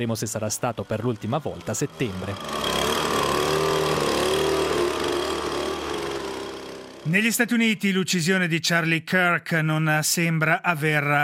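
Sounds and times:
speech: 0:00.0 - 0:02.9, 0:07.1 - 0:11.2
leaf blower motor whine: 0:00.4 - 0:07.1.

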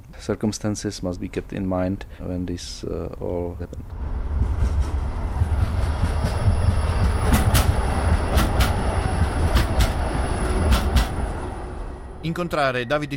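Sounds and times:
speech: 0:00.1 - 0:04.5, 0:12.2 - 0:13.1
tram rumbling along rails: 0:03.1 - 0:13.1
tram wheels clacking over rail joints: 0:04.3 - 0:11.3.

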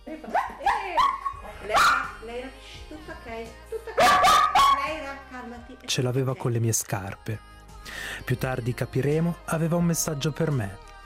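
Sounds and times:
speech: 0:00.1 - 0:00.4, 0:05.7 - 0:11.0
dog barking and yipping: 0:00.3 - 0:02.2, 0:04.0 - 0:05.0.

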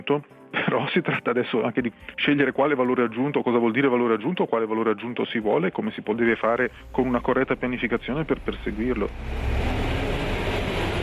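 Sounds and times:
speech: 0:00.1 - 0:09.8
dense road traffic rumble: 0:06.7 - 0:11.0.

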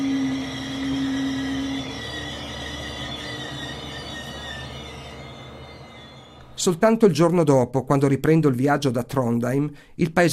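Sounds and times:
train arriving at station rumbling: 0:00.0 - 0:06.7
speech: 0:06.6 - 0:10.3.

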